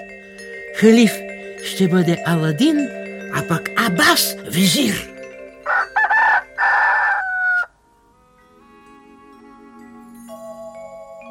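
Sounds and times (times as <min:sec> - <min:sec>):
soft sustained tonal calls: 0:00.0 - 0:11.2
speech: 0:00.8 - 0:05.1
roosters crowing at first light: 0:05.4 - 0:08.2.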